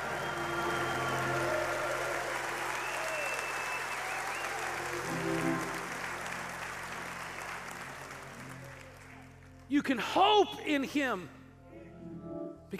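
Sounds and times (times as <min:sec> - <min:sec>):
large crowd clapping: 0:00.0 - 0:09.8
speech: 0:09.7 - 0:11.4.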